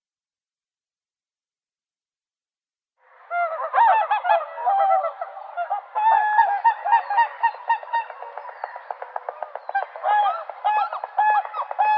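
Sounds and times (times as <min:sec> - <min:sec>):
whooper swans calling in bugling chorus: 0:03.4 - 0:11.9.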